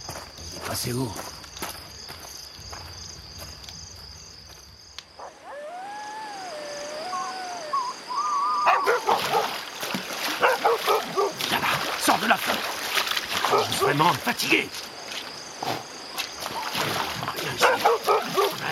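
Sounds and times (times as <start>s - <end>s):
speech: 0.7s - 1.3s, 13.9s - 14.9s
drawn-out whining or howling tone: 5.2s - 9.2s
splashing water: 8.1s - 18.6s
dog barking: 8.6s - 9.6s, 10.4s - 11.4s, 13.4s - 14.0s, 17.6s - 18.6s.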